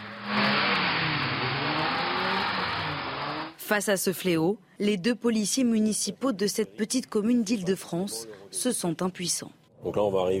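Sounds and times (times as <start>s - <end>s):
car engines revving and roaring at a car rodeo in Île-de-France: 0.0s - 3.6s
tires hissing from cars drifting at full speed: 0.0s - 3.6s
speech: 3.7s - 10.3s.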